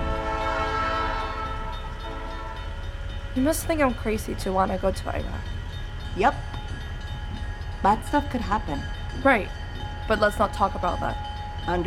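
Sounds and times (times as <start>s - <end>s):
freight train horn blaring: 0.0s - 3.8s
freight train rolling past with heavy low rumble: 0.0s - 11.8s
speech: 3.4s - 5.6s, 6.2s - 6.6s, 7.8s - 11.8s.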